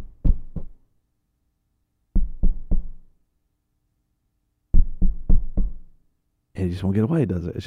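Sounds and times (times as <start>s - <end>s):
knocking on a door: 0.0s - 0.8s, 2.2s - 3.0s, 4.7s - 5.8s
speech: 6.6s - 7.6s.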